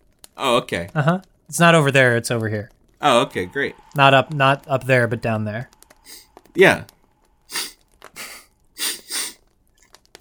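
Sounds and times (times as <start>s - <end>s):
speech: 0.4s - 7.7s
breathy noise: 3.1s - 9.4s
wet nasal sniffs: 7.5s - 9.4s.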